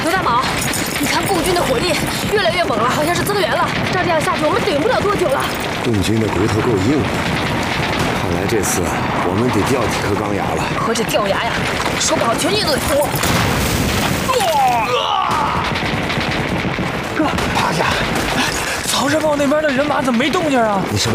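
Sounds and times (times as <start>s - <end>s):
artillery cannon fire in a battle scene: 0.0s - 21.1s
rapid gunfire blasts: 0.0s - 21.1s
shouting voices: 14.2s - 16.1s.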